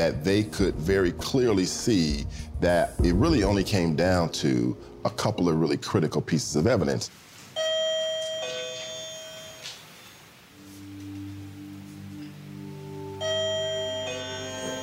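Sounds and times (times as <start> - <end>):
speech: 0.0 - 7.2
wireless electronic doorbell chime: 7.6 - 9.8, 13.2 - 14.8.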